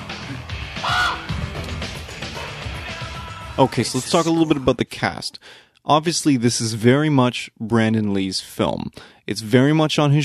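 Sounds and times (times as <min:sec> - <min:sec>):
crow cawing: 0:00.8 - 0:01.3
speech: 0:03.6 - 0:10.2.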